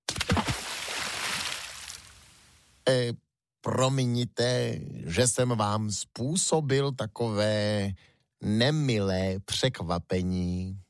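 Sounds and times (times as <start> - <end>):
big splash into water: 0.1 - 2.2
speech: 2.9 - 10.8.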